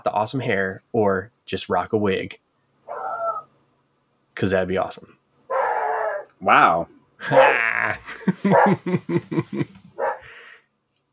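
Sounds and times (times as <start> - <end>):
speech: 0.2 - 2.4, 4.4 - 5.2, 6.4 - 9.8
dog barking and yipping: 2.9 - 3.4, 5.5 - 6.3, 7.3 - 7.6, 8.4 - 8.9, 10.0 - 10.3
dog whining: 2.9 - 3.5, 5.5 - 6.4, 10.0 - 10.3
laughter: 7.2 - 9.8.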